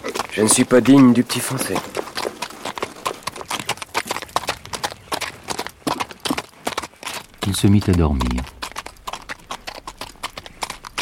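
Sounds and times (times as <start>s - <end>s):
horse hooves clip-clopping in a brisk rhythm: 0.0s - 11.0s
speech: 0.4s - 2.1s, 7.5s - 8.6s.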